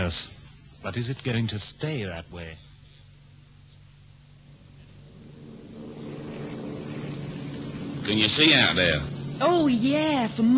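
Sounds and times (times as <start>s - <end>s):
speech: 0.1s - 2.7s, 8.0s - 10.5s
propeller plane engine droning: 4.3s - 10.5s.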